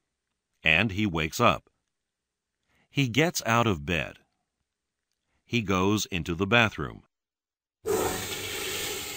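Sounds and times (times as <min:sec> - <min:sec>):
speech: 0:00.6 - 0:01.7, 0:02.9 - 0:04.2, 0:05.5 - 0:07.1
toilet flushing: 0:07.9 - 0:09.1.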